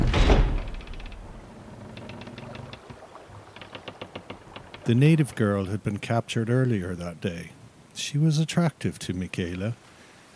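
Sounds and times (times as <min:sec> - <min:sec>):
cabin door slamming shut: 0:00.0 - 0:01.4
low rumble: 0:00.0 - 0:01.5
light rattling and clicking: 0:00.0 - 0:05.5
speech: 0:04.9 - 0:10.3.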